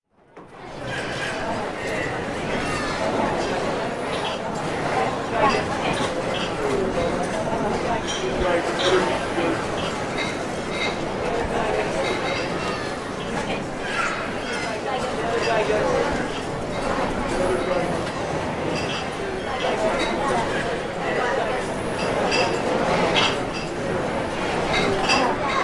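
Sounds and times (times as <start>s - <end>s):
busy cafe ambience in the afternoon: 0.2s - 25.6s.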